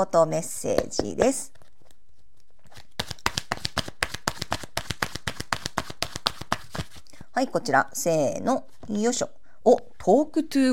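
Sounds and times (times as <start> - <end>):
speech: 0.0 - 1.6, 7.4 - 10.7
oracle cards being shuffled by hand: 1.1 - 7.1.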